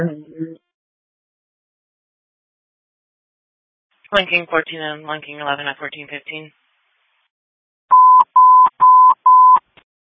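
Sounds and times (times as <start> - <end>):
speech: 0.0 - 0.3, 4.1 - 6.6
radio dispatch alert tones: 7.9 - 9.7.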